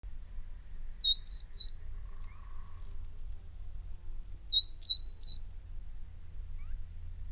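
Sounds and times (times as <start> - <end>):
faint low rumble: 0.0 - 7.3
Verdin giving sharp high whistled three-note phrase: 1.0 - 1.9, 4.5 - 5.6.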